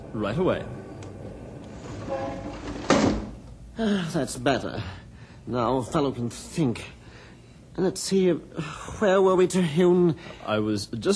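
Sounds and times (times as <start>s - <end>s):
speech: 0.1s - 0.9s, 3.8s - 7.0s, 7.8s - 11.1s
skyscraper window sliding shut along its frame: 1.7s - 3.4s.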